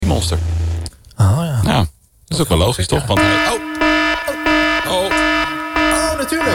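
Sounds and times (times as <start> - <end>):
speech: 0.1 - 3.7
brief voice-like warbles: 3.2 - 6.5
horn alarm sound effect blaring: 3.2 - 6.5.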